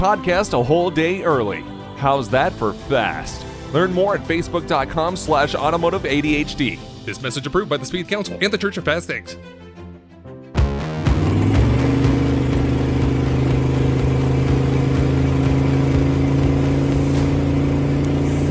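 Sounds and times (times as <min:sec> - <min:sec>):
speech: 0:00.0 - 0:09.6
large SUV engine accelerating at highway speed heard from inside the cabin: 0:10.9 - 0:18.4.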